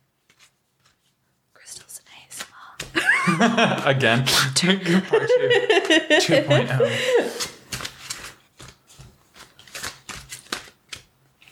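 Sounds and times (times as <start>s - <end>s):
tarot cards being shuffled: 0.2s - 1.2s, 1.8s - 3.0s, 7.3s - 11.4s
voices and laughter: 3.0s - 7.5s
speech: 3.3s - 7.4s.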